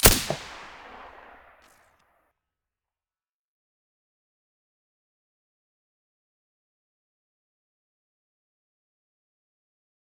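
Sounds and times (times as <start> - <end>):
silenced rifle gunshots: 0.0 - 1.4.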